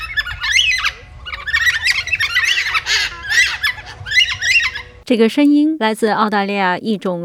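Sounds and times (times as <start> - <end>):
flock of Carnaby's black cockatoos calling: 0.0 - 5.0
low rumble: 0.0 - 5.1
person talking: 5.1 - 7.2.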